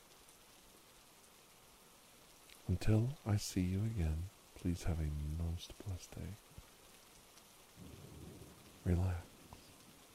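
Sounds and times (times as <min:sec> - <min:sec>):
steady rain: 0:00.0 - 0:10.1
speech: 0:02.7 - 0:06.7, 0:07.8 - 0:08.1, 0:08.8 - 0:09.3
distant thunder rumbling: 0:07.8 - 0:10.1.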